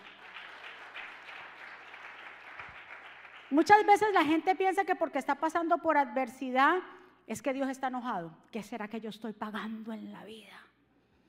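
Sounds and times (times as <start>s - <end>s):
large crowd applauding loudly: 0.0s - 3.6s
speech: 3.5s - 10.7s.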